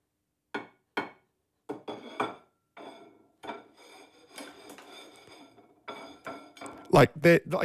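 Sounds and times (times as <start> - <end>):
ceramic plate being bumped, clinking and rattling: 1.8 - 6.9
speech: 7.0 - 7.6.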